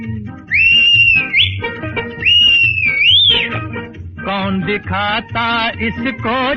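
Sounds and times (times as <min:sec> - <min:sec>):
whistle blown as for a train: 0:00.5 - 0:03.6
speech: 0:04.4 - 0:06.5.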